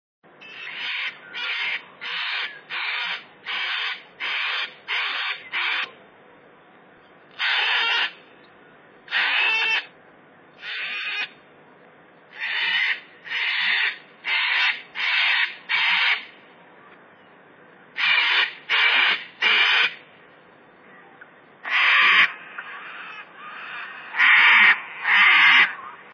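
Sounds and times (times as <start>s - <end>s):
cockatoo: 0.4s - 6.0s, 7.4s - 8.2s, 9.1s - 9.9s, 10.6s - 11.4s, 12.3s - 17.0s, 18.0s - 20.0s, 20.9s - 26.1s.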